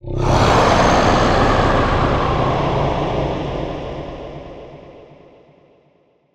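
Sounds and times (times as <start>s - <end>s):
distant abstract monster scream: 0.0s - 5.3s.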